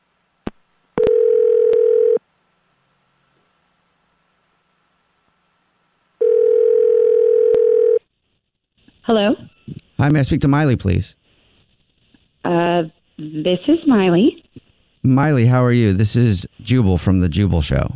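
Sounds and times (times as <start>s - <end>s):
phone line electronic ringing tone before a call connects: 1.0s - 2.2s, 6.2s - 8.0s
speech: 9.1s - 11.2s, 12.4s - 14.4s, 15.0s - 17.9s.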